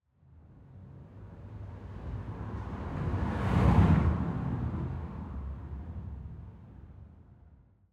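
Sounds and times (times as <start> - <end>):
designed car pass by heard from interior: 1.5 - 6.8.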